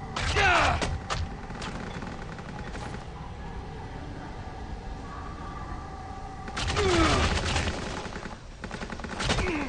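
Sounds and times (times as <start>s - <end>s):
video game gunfire: 0.2s - 3.0s, 6.5s - 9.6s.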